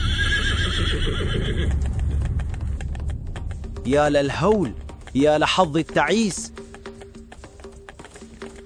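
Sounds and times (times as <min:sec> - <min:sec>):
horse whinnying: 0:00.0 - 0:01.8
horse hooves galloping: 0:00.0 - 0:08.6
low rumbling background: 0:01.3 - 0:05.2
speech: 0:03.9 - 0:06.6.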